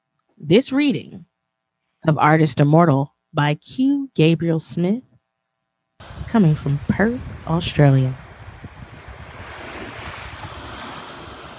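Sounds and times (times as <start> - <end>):
speech: 0.4 - 1.3, 2.0 - 5.1, 6.0 - 8.2
gusty wind rumbling across the microphone: 6.0 - 11.5
ocean waves breaking on shore: 6.0 - 11.5.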